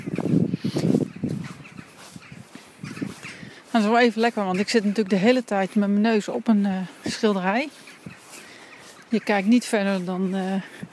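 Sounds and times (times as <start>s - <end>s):
scattered bird calls: 0.0s - 10.9s
speech: 3.8s - 7.8s, 9.1s - 10.8s.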